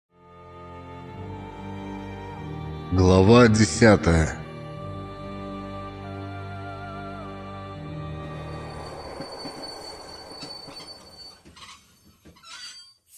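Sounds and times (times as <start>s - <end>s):
speech: 2.9s - 4.4s
low train carriage rumble: 8.2s - 12.2s
train wheels squealing on rails: 8.2s - 13.1s
train wheels clattering on rails: 8.6s - 12.4s.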